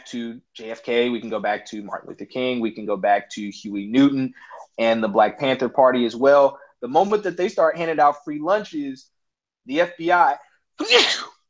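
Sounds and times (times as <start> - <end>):
speech: 0.1 - 11.3
person sneezing: 10.8 - 11.4.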